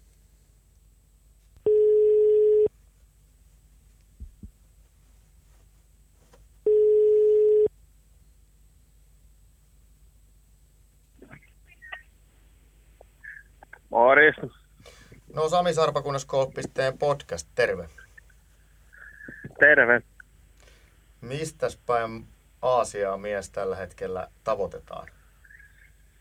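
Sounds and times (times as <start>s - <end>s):
telephone ringing tone on an outgoing call to Thailand: 1.6s - 2.7s, 6.7s - 7.7s
speech: 14.2s - 14.6s, 15.4s - 18.0s, 19.6s - 20.1s, 21.2s - 25.2s.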